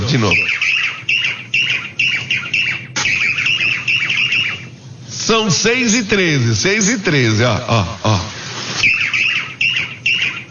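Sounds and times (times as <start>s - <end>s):
low hum: 0.0s - 10.4s
speech: 0.1s - 0.8s, 5.3s - 8.2s
small bird calling outside window: 0.3s - 4.7s, 8.8s - 10.4s.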